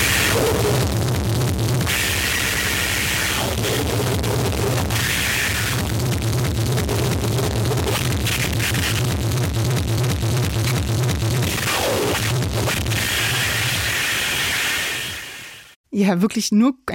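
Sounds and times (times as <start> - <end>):
harsh Japanese noise music with distorted static and roaring noise: 0.0 - 15.8
speech: 16.1 - 16.9.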